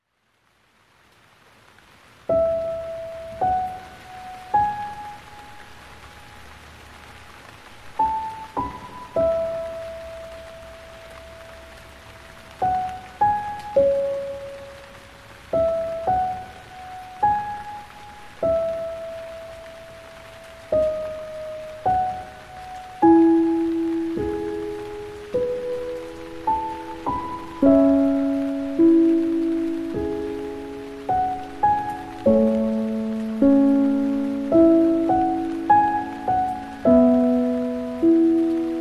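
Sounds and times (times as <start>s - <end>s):
rain: 0.0s - 38.7s
piano: 1.7s - 38.7s.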